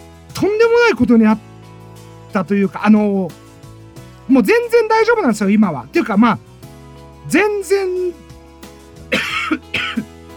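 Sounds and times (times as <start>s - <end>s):
speech: 0.4s - 1.5s, 2.3s - 3.4s, 4.3s - 6.5s, 7.3s - 8.2s
harsh coughs from someone just over a cold: 9.1s - 10.1s.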